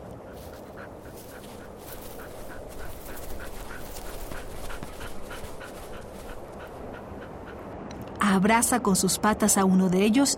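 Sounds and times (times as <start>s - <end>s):
low rumble: 0.0s - 10.3s
dog panting while running through snow: 0.2s - 7.8s
speech: 8.4s - 10.3s.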